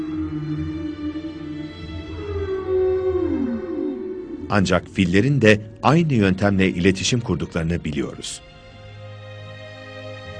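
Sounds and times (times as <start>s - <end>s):
deep whale low-frequency call: 0.0s - 4.6s
speech: 4.5s - 8.5s.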